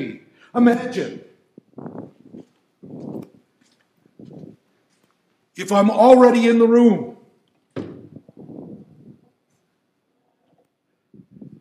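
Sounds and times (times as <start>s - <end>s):
speech: 0.0s - 2.0s, 5.6s - 7.2s
pounding on a door: 7.8s - 8.2s.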